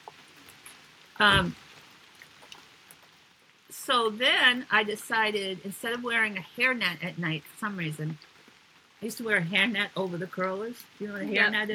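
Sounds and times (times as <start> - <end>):
soft steady rain falling: 0.0 - 11.7
brief vocal sound from a person: 1.2 - 1.5, 11.2 - 11.7
speech: 1.2 - 1.6, 3.9 - 8.3, 9.0 - 11.7.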